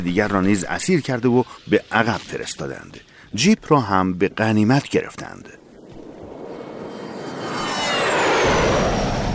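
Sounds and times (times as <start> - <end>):
speech: 0.0 - 5.6
military jet aircraft roaring overhead: 5.8 - 9.3.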